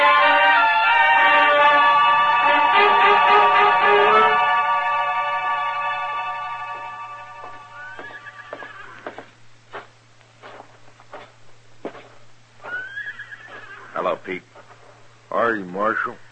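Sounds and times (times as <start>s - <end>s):
faint steady hum: 0.0s - 16.3s
hooves thumping and shuffling: 7.3s - 15.2s
horse neighing in a stable: 7.8s - 9.3s, 12.6s - 14.0s.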